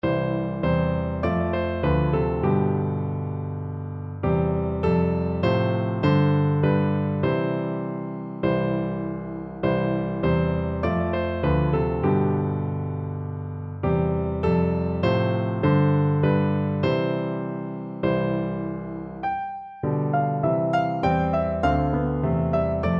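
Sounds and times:
piano duet: 0.0 - 22.9.

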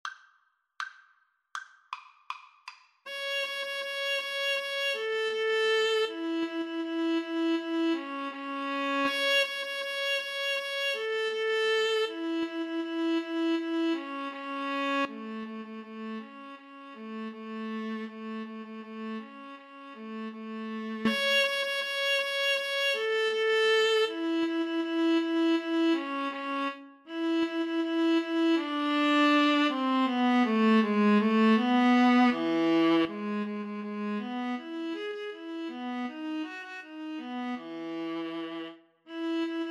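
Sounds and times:
violin and viola duet playing a march: 3.1 - 39.6.

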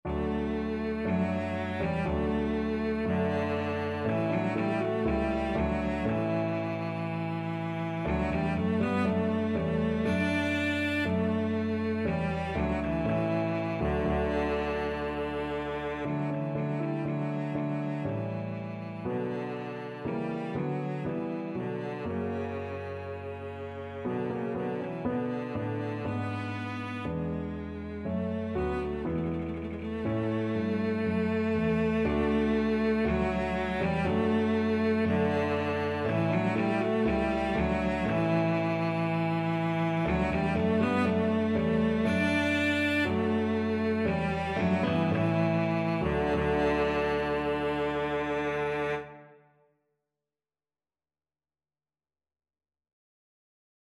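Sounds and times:
cello playing: 0.0 - 49.5.

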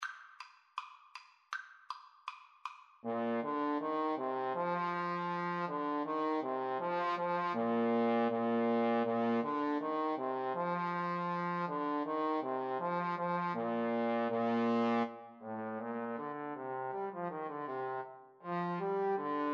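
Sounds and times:
trombone duet: 3.0 - 19.5.

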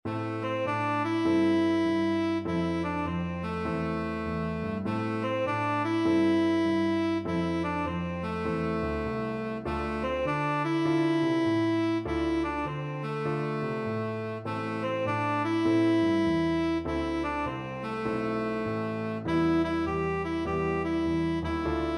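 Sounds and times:
cool blues tenor saxophone: 0.1 - 21.9.

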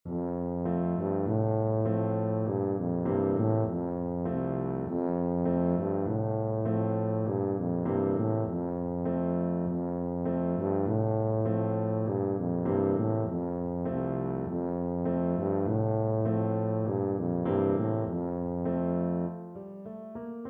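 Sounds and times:
tuba playing a folk tune: 0.1 - 19.4.

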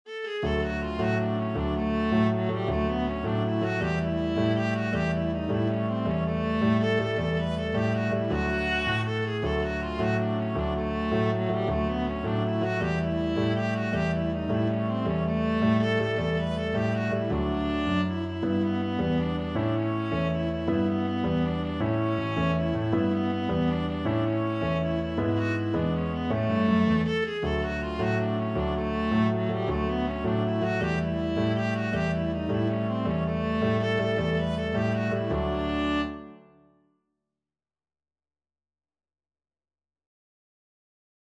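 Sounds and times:
viola playing a Mexican dance tune: 0.1 - 36.4.

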